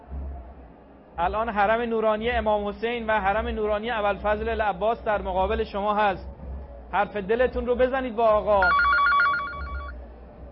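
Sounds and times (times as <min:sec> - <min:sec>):
speech: 0:01.2 - 0:06.3, 0:06.9 - 0:08.8
telephone ringing with an incoming call: 0:08.6 - 0:09.9.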